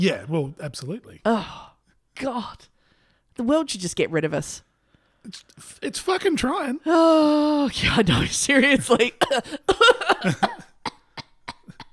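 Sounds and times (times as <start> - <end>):
speech: 0.0 - 2.7, 3.4 - 10.7
person coughing: 9.1 - 11.9.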